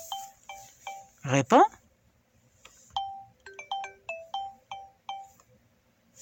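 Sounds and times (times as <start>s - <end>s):
old obsolete phone ringing with a faint melodic ringtone: 0.0s - 1.2s, 3.0s - 5.4s
speech: 1.2s - 1.8s.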